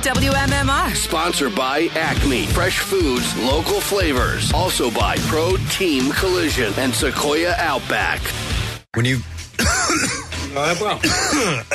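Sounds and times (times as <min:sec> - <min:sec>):
speech: 0:00.0 - 0:11.7
throat clearing: 0:09.6 - 0:10.3, 0:11.0 - 0:11.7.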